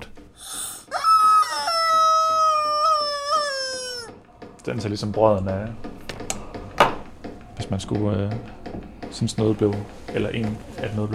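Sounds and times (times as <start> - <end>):
hen-shaped squeaky toy being squeezed: 0.9 - 4.1
speech: 4.7 - 5.9, 7.7 - 11.1.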